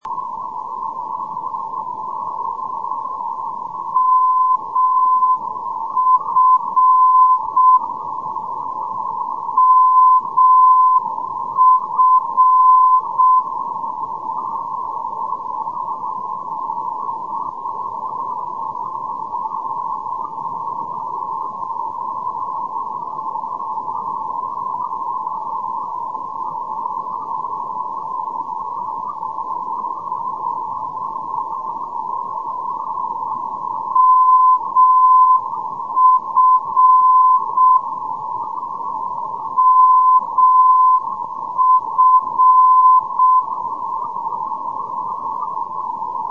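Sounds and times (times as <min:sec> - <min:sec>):
NDB radio beacon signal: 0:00.0 - 0:14.0, 0:33.8 - 0:38.0, 0:39.5 - 0:44.3.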